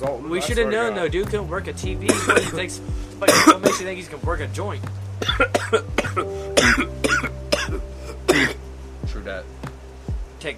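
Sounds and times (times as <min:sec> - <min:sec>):
speech: 0:00.0 - 0:07.4, 0:09.2 - 0:09.6
person coughing harshly: 0:02.1 - 0:02.6, 0:03.2 - 0:03.9, 0:05.2 - 0:08.6.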